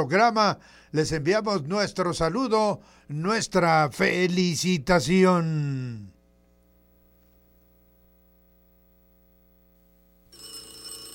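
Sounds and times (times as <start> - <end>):
speech: 0.0 - 6.2
electrical hum: 0.0 - 11.1
telephone bell ringing: 10.3 - 11.1.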